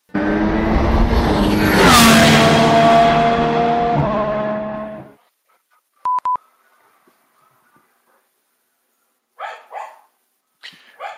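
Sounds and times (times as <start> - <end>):
car roaring past: 0.1 - 5.1
dog barking: 9.4 - 10.2, 11.0 - 11.1.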